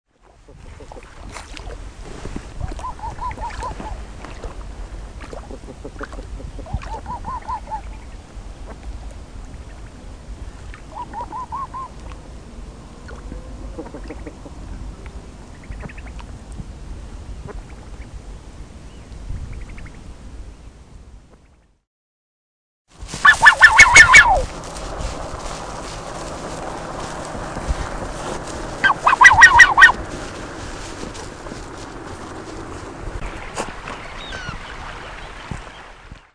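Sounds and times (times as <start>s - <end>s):
Magellanic goose: 0.5s - 1.7s, 2.6s - 4.0s, 5.2s - 8.8s, 10.8s - 12.0s, 13.0s - 14.6s, 23.2s - 24.5s, 28.2s - 30.0s, 33.6s - 35.2s.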